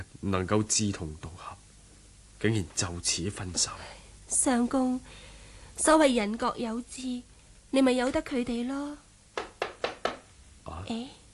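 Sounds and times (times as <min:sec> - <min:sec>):
speech: 0:00.2 - 0:01.6, 0:02.4 - 0:09.0, 0:10.9 - 0:11.2
knocking on a door: 0:09.4 - 0:10.3.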